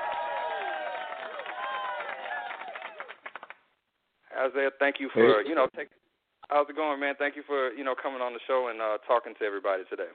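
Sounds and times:
crowd cheering to welcome a guest: 0:00.0 - 0:03.6
speech: 0:04.4 - 0:10.1.

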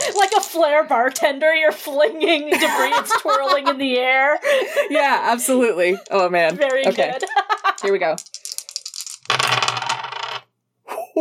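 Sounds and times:
dice rattling and clattering across a hard surface: 0:00.0 - 0:01.2, 0:05.9 - 0:10.4
speech: 0:00.4 - 0:08.4
laughter: 0:02.0 - 0:05.0, 0:05.9 - 0:07.9.

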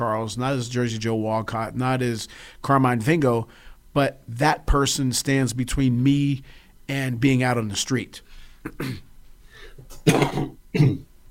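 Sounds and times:
speech: 0:00.0 - 0:09.1, 0:10.0 - 0:11.1
person coughing throatily: 0:08.6 - 0:11.1.

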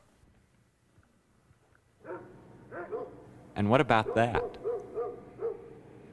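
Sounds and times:
dog barking and yipping: 0:02.0 - 0:03.2, 0:04.0 - 0:05.8
speech: 0:03.6 - 0:04.5.

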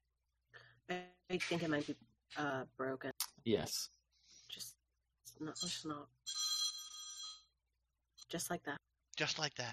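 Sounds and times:
speech: 0:00.9 - 0:06.2, 0:08.3 - 0:09.7
mobile phone ringing in a bright steady electronic tone: 0:05.6 - 0:07.5.

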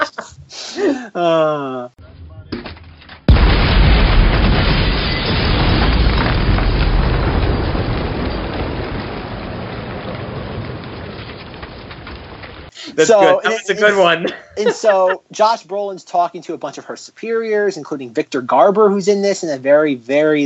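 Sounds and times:
laughter: 0:00.0 - 0:01.9, 0:12.8 - 0:15.5
speech: 0:01.1 - 0:01.8, 0:13.0 - 0:20.4
crackling debris: 0:02.6 - 0:14.1
loud explosion of a small house: 0:03.3 - 0:12.8.

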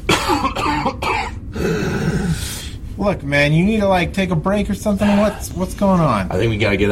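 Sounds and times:
harsh coughing fit with raspy throat-clearing: 0:00.0 - 0:02.4
person gasping: 0:01.5 - 0:02.8
speech: 0:03.0 - 0:06.9.

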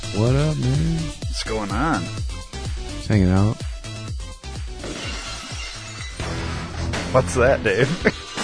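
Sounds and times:
speech: 0:00.2 - 0:02.3, 0:03.1 - 0:03.7, 0:07.1 - 0:08.2
glass shattering: 0:04.8 - 0:06.7, 0:08.0 - 0:08.4.

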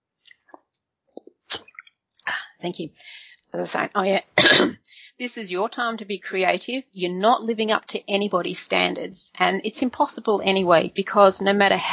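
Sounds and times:
person sipping water: 0:01.2 - 0:02.3
speech: 0:02.6 - 0:11.9.

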